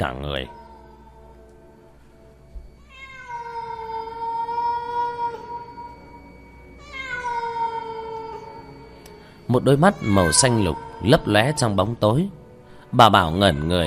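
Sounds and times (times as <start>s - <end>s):
speech: 0.0s - 0.6s, 9.5s - 13.8s
cat yowling outside at night near a village: 2.8s - 8.9s, 9.5s - 12.2s, 13.0s - 13.8s.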